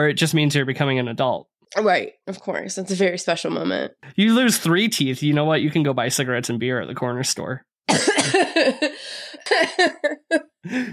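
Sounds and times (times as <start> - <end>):
speech: 0.0 - 10.9
person coughing harshly: 7.9 - 10.0.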